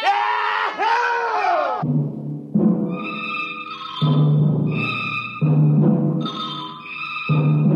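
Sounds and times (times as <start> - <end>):
men shouting and celebrating: 0.0 - 1.8
bright ringing tones: 3.0 - 5.6, 6.2 - 7.6.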